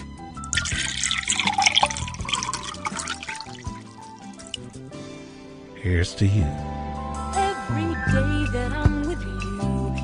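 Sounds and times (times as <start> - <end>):
soft music: 0.0 - 10.0
wine pouring into a glass: 0.5 - 4.8
speech: 5.8 - 6.8, 7.7 - 8.8.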